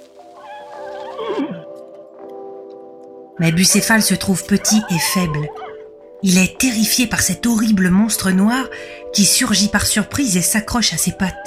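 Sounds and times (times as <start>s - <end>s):
horse whinnying with a loud wavering neigh: 0.4s - 1.8s, 3.4s - 5.9s
speech: 3.4s - 11.4s.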